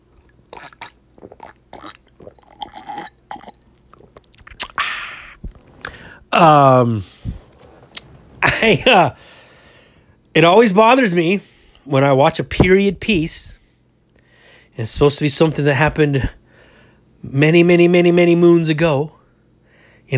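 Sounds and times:
swallowing: 0.0s - 6.3s, 6.9s - 8.5s
person sipping iced tea: 0.0s - 8.5s
throaty burp-like gulps: 0.0s - 9.2s
speech: 6.4s - 7.1s, 8.6s - 9.3s, 10.4s - 13.6s, 14.8s - 16.4s, 17.2s - 19.2s.

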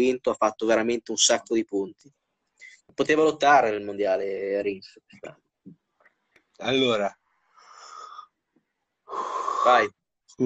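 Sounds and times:
speech: 0.0s - 2.2s, 2.9s - 5.8s, 6.6s - 7.2s, 9.1s - 10.4s
drawn-out breathy voiced yawn: 9.1s - 9.8s.

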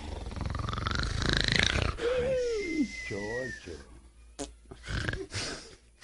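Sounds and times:
voice imitating the loud snoring of a man sleeping on a cot: 0.0s - 2.2s, 4.8s - 5.3s
speech: 3.1s - 4.5s.

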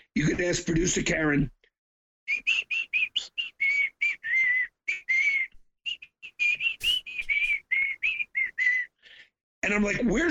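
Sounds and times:
speech: 0.2s - 1.6s, 9.7s - 10.2s
man whistling a lively tune: 2.3s - 9.0s.

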